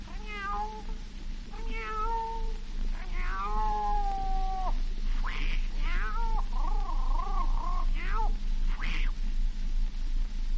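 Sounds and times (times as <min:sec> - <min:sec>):
low hum: 0:00.0 - 0:10.5
cat caterwauling on rooftops: 0:00.1 - 0:00.9, 0:01.6 - 0:09.1.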